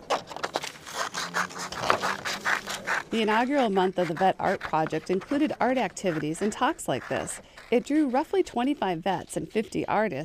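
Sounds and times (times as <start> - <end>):
paper rustling and scraping while making collages: 0.0 - 7.8
speech: 3.1 - 10.2.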